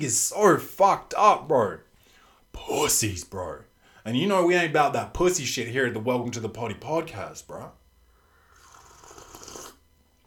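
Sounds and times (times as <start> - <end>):
speech: 0.0 - 1.8, 2.6 - 7.8
slurp of hot peppermint tea: 8.5 - 9.8.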